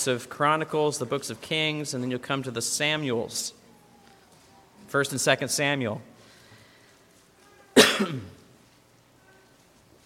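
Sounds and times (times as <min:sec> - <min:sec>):
speech: 0:00.0 - 0:03.6, 0:04.9 - 0:06.1, 0:08.0 - 0:08.4
person coughing: 0:07.8 - 0:08.4
throat clearing: 0:07.8 - 0:08.4.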